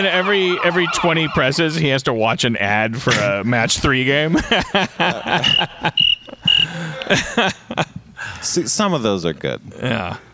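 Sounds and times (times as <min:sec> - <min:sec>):
voice-like bursts: 0:00.0 - 0:01.9
speech: 0:00.0 - 0:06.1, 0:07.0 - 0:10.3
laughter: 0:04.3 - 0:08.1
cricket chirping sound effect: 0:05.4 - 0:06.8.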